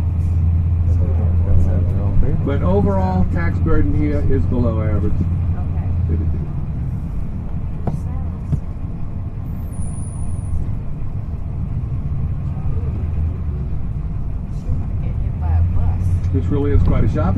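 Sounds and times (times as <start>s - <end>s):
busy street noise: 0.0s - 17.3s
city bus engine drone: 0.0s - 17.3s
speech: 2.5s - 5.5s, 6.1s - 6.4s, 16.4s - 17.3s.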